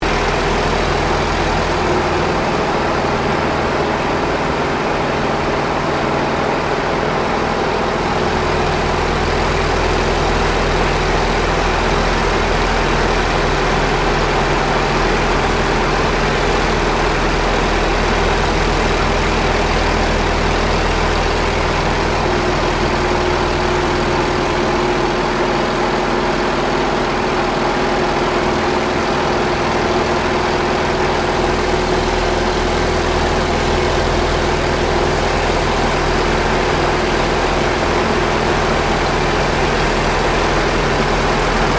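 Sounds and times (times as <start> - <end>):
T-28D Trojan aircraft interior noise in flight: 0.0 - 41.7.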